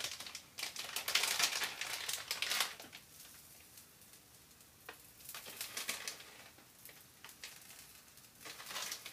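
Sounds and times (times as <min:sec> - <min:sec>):
cabbage-yaki sizzling on a hot griddle: 0:00.1 - 0:09.1.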